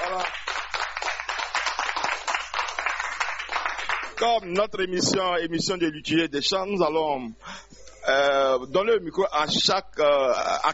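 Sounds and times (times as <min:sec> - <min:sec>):
applause for a Catholic choir: 0:00.0 - 0:04.4
speech: 0:04.2 - 0:07.4, 0:08.1 - 0:10.7.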